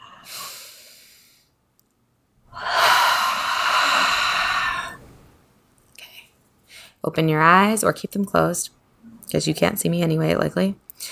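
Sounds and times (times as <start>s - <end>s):
deep human breath: 0.0s - 1.5s, 2.5s - 5.3s, 11.0s - 11.1s
speech: 7.0s - 11.1s.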